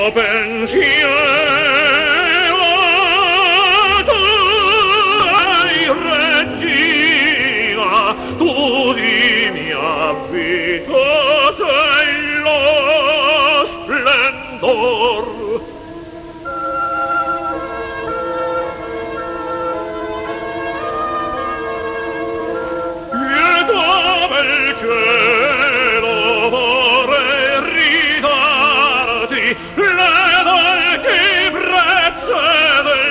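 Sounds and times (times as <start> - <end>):
brass instrument playing mishaps: 0.2 - 33.0.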